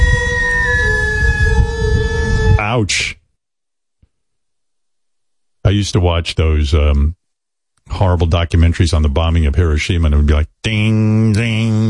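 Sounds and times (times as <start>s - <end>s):
traditional Japanese instruments playing long wailing tones: 0.0s - 3.1s
speech: 2.8s - 3.2s, 5.7s - 7.2s, 7.9s - 11.8s.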